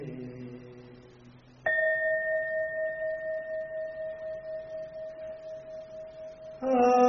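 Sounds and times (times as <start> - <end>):
meditation bell ringing: 1.6 - 7.0.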